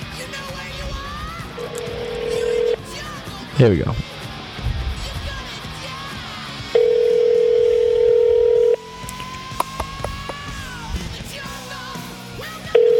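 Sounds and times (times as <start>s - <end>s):
ringback tone of an outgoing phone call: 1.6s - 2.8s, 6.8s - 8.8s, 12.8s - 12.9s
speech: 3.6s - 4.1s.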